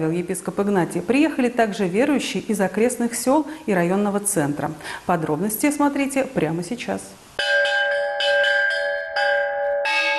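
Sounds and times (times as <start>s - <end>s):
speech: 0.0s - 7.2s
church bells of a village church pealing on a Sunday: 7.4s - 10.1s.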